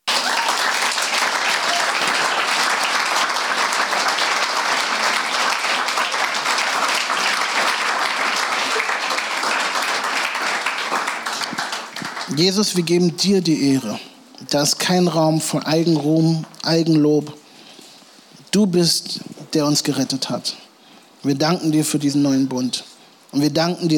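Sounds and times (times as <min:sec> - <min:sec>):
church congregation applauding: 0:00.0 - 0:13.2
church congregation crowd noise: 0:00.0 - 0:13.5
speech: 0:12.4 - 0:17.4, 0:18.5 - 0:20.6, 0:21.2 - 0:23.9.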